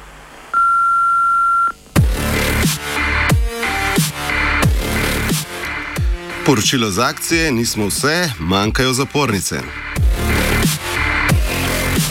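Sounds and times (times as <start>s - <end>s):
answering machine beep: 0.6s - 1.8s
loud rhythmic music with heavy drums: 2.0s - 12.1s
speech: 6.5s - 9.9s.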